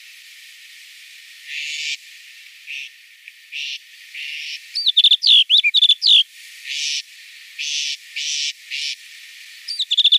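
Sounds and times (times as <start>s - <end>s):
snow bunting song: 3.6s - 6.2s, 9.7s - 10.1s.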